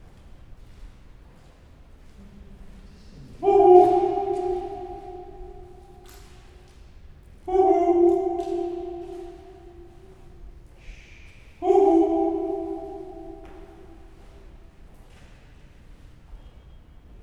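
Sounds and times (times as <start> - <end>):
voice calling huhu echoing in an archaeological museum: 3.2 - 6.4, 7.4 - 14.6.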